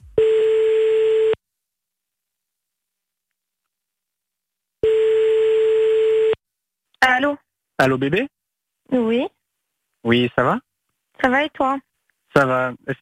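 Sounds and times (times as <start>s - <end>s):
ringback tone of an outgoing telephone call: 0.1s - 1.4s, 4.8s - 6.4s
speech: 7.2s - 9.4s, 10.0s - 13.0s.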